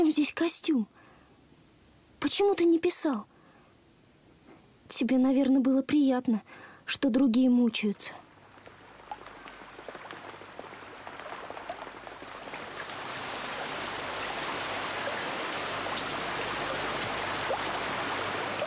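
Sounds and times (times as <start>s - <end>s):
speech: 0.0s - 1.1s, 2.2s - 3.4s, 4.9s - 8.3s
rain falling in a dense downpour: 8.3s - 18.6s.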